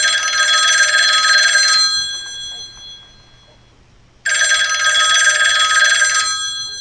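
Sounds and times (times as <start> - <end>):
loud shrill telephone bell ringing: 0.0 - 3.6, 4.3 - 6.8.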